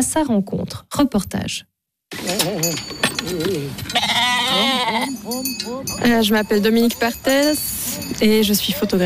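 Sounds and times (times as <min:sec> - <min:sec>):
speech: 0:00.0 - 0:03.0, 0:05.3 - 0:09.0
sheep bleating in a pasture: 0:03.8 - 0:05.2.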